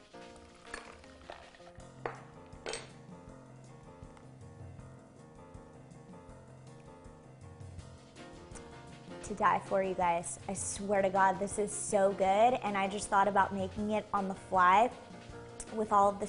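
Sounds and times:
spoon stirring a homemade mocktail in a glass: 0:00.7 - 0:01.6, 0:02.6 - 0:03.0
speech: 0:09.3 - 0:15.1, 0:15.7 - 0:16.2.

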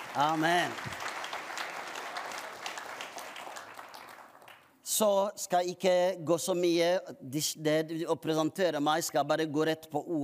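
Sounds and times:
audience applause at an evening prayer conference in a church: 0:00.0 - 0:04.6
speech: 0:00.2 - 0:01.0, 0:05.0 - 0:10.2.

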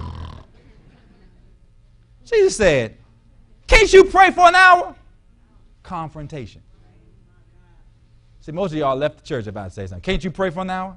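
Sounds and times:
voice imitating snoring: 0:00.0 - 0:00.6
speech: 0:02.3 - 0:03.0, 0:03.8 - 0:05.0, 0:05.8 - 0:06.7, 0:08.4 - 0:10.9.

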